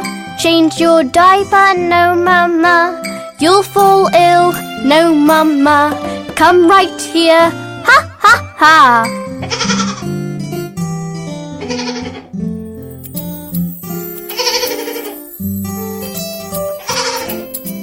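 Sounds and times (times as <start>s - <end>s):
speech: 0.4s - 9.7s
baby goat bleating: 9.4s - 10.1s, 11.6s - 12.3s.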